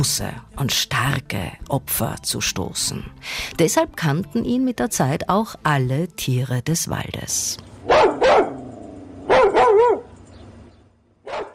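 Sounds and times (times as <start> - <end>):
speech: 0.0 - 8.1
dogs barking: 7.8 - 10.2, 11.2 - 11.5.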